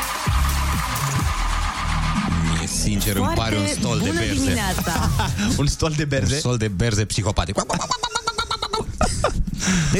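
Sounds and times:
car engine cranking without catching: 0:00.0 - 0:04.7
speech: 0:02.8 - 0:08.2, 0:09.2 - 0:09.9
laughter: 0:04.3 - 0:05.8, 0:07.4 - 0:09.9.

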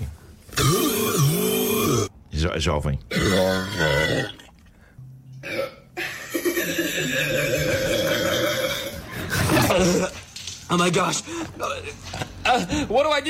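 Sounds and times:
man burping loudly: 0:00.6 - 0:02.1, 0:03.1 - 0:04.5, 0:05.4 - 0:10.2
speech: 0:02.5 - 0:04.4, 0:10.7 - 0:13.2.

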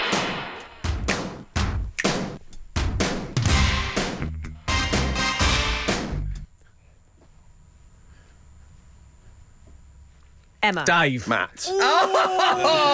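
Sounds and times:
80s pop instrumental intro: 0:00.0 - 0:06.4
drum hits: 0:00.0 - 0:06.4
speech: 0:10.7 - 0:12.9
laughter: 0:11.7 - 0:12.9.

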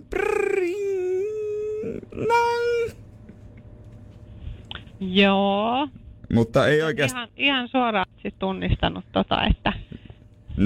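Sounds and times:
voice imitating a recorder flute: 0:00.0 - 0:03.0
speech: 0:05.0 - 0:09.9.

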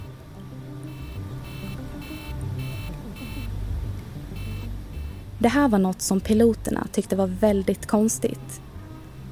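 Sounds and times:
loud constant aircraft engine rumble: 0:00.0 - 0:09.3
aircraft cockpit warning alarm beeping in short bursts: 0:00.9 - 0:03.5, 0:04.4 - 0:05.3
speech: 0:05.4 - 0:08.6.

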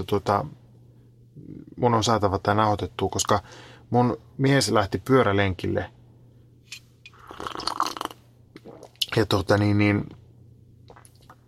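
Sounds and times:
speech: 0:00.0 - 0:00.6, 0:01.4 - 0:06.0, 0:09.2 - 0:10.2
person slurping a drink: 0:07.1 - 0:09.1, 0:10.9 - 0:11.4.

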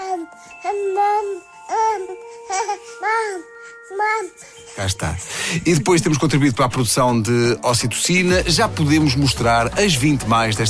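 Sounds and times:
baby babbling and cooing: 0:00.0 - 0:04.6
speech: 0:00.3 - 0:10.6.

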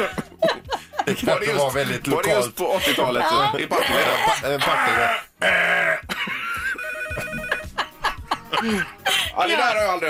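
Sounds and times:
laughter: 0:00.0 - 0:01.4, 0:06.1 - 0:09.4
speech: 0:01.1 - 0:06.0, 0:08.6 - 0:10.0
telephone ringing with an electronic trill: 0:06.8 - 0:07.8.

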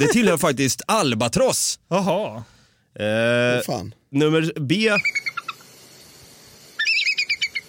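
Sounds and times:
speech: 0:00.0 - 0:05.3
bald eagle high-pitched chattering call: 0:04.8 - 0:05.7, 0:06.8 - 0:07.6.

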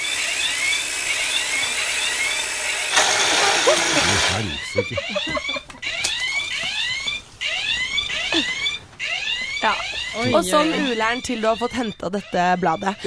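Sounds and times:
flying alarm clock's steady mechanical whir: 0:00.0 - 0:05.3
flying alarm clock's electronic alarm wailing: 0:00.0 - 0:13.0
laughter: 0:03.3 - 0:05.8
speech: 0:03.6 - 0:05.6, 0:09.6 - 0:13.0.

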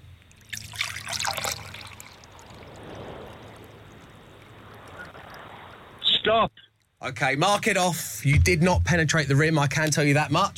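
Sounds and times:
liquid pouring from a jug: 0:00.2 - 0:05.9
speech: 0:06.3 - 0:10.5.

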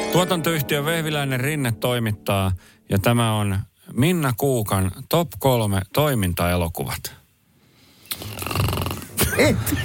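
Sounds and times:
speech: 0:00.1 - 0:07.2, 0:09.4 - 0:09.8
person imitating a snore with a raspy rattling snort: 0:08.1 - 0:09.2.

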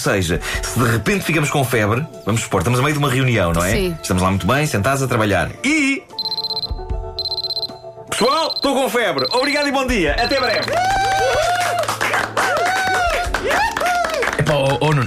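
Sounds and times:
speech: 0:00.0 - 0:06.1, 0:08.2 - 0:11.0, 0:14.5 - 0:15.0
electronic alarm beeping: 0:06.2 - 0:10.7
swooping high-pitched tones: 0:06.2 - 0:10.7
applause: 0:10.5 - 0:15.0.

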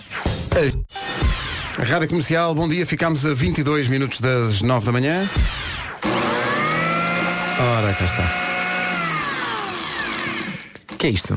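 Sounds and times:
speech: 0:00.6 - 0:01.0, 0:01.8 - 0:05.8, 0:07.6 - 0:08.4, 0:11.0 - 0:11.3
juicer electric motor whining: 0:06.0 - 0:10.8.

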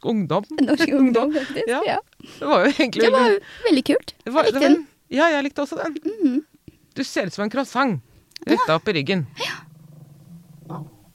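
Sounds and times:
speech: 0:00.0 - 0:09.6, 0:10.7 - 0:10.9
pet dog growling: 0:09.3 - 0:11.1.

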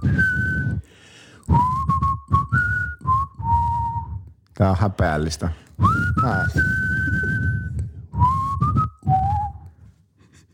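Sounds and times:
person whistling a short melody: 0:00.0 - 0:04.3, 0:05.8 - 0:09.9
speech: 0:04.6 - 0:07.2.

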